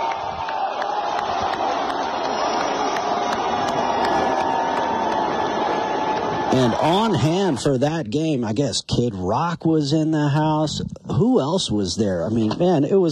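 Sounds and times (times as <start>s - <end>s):
large stadium crowd cheering and shouting at a football game: 0.0s - 7.8s
speech: 6.5s - 13.1s.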